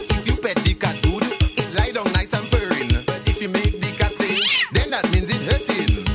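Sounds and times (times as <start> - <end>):
loud rhythmic music with a thumping beat: 0.0 - 6.1
cat meowing: 4.3 - 4.8.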